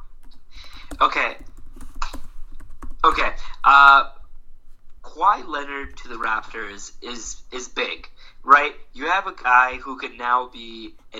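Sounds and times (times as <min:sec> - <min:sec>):
low hum: 0:00.0 - 0:11.1
typing on a computer keyboard: 0:00.2 - 0:03.2
speech: 0:05.7 - 0:11.1.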